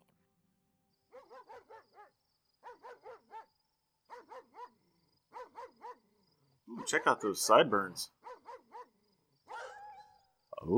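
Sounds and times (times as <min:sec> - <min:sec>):
dog yelping: 0:01.1 - 0:03.5, 0:04.1 - 0:04.7, 0:05.4 - 0:06.0, 0:08.2 - 0:08.9, 0:09.5 - 0:10.2
dog barking: 0:01.1 - 0:06.0, 0:08.2 - 0:10.2
speech: 0:06.7 - 0:08.2, 0:10.6 - 0:10.7.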